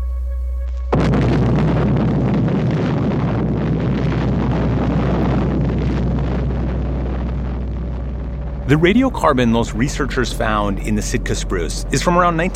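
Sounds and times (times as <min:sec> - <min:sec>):
low hum: 0:00.0 - 0:12.5
atomic bomb test explosion: 0:00.9 - 0:12.5
speech: 0:08.7 - 0:12.5.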